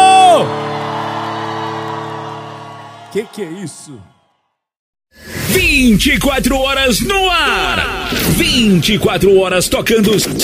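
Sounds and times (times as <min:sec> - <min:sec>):
loud crowd whooping: 0:00.0 - 0:04.6
speech: 0:03.1 - 0:04.2, 0:05.1 - 0:10.4.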